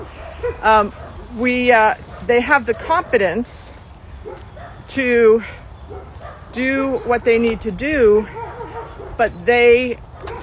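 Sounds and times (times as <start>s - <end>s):
dog bark: 0.0s - 1.3s, 4.2s - 4.8s, 5.9s - 6.5s, 8.2s - 9.3s, 10.2s - 10.4s
speech: 0.4s - 3.7s, 4.3s - 8.4s, 9.2s - 10.0s.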